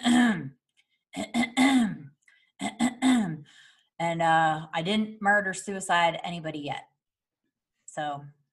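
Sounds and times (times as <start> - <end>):
person imitating throat clearing: 0.0 - 0.6, 1.2 - 3.5
speech: 4.1 - 6.9, 8.0 - 8.4.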